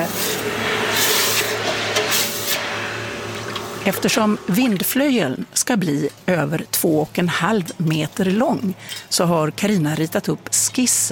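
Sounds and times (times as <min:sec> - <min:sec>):
hot hammered metal quenched in a bucket of water, sizzling hiss and steam bursts: 0:00.0 - 0:04.4
speech: 0:03.9 - 0:11.1.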